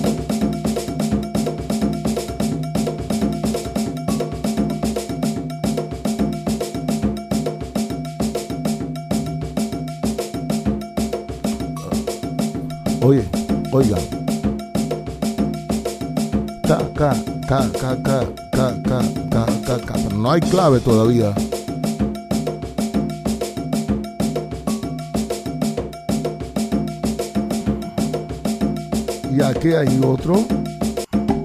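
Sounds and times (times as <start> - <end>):
layered drums of Abakuá ritual percussion from Havana: 0.0 - 31.4
sharp insistent cowbell pattern in Abakuá ritual percussion from Havana: 0.0 - 31.4
person calling out: 11.8 - 14.2, 16.6 - 21.4
speech: 13.8 - 14.1, 17.0 - 19.1, 19.7 - 21.5, 29.6 - 30.8.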